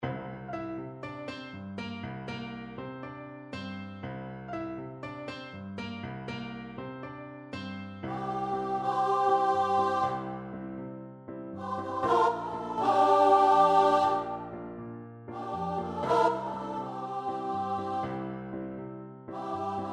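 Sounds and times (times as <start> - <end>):
piano: 0.0 - 19.9
person singing: 8.1 - 10.4, 11.6 - 14.6, 15.4 - 18.3, 19.3 - 19.9.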